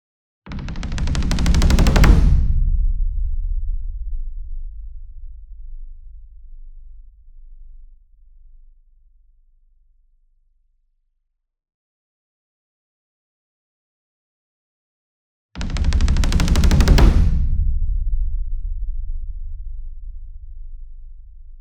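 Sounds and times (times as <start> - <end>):
60 inch taiko drum roll with hard beater: 0.5 - 3.7, 15.6 - 20.4.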